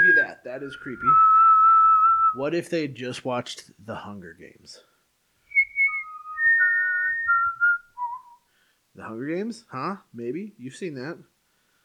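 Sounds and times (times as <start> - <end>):
short whistled melody: 0.0 - 2.4, 5.5 - 8.4
speech: 0.5 - 1.4, 2.3 - 4.9, 9.0 - 11.3.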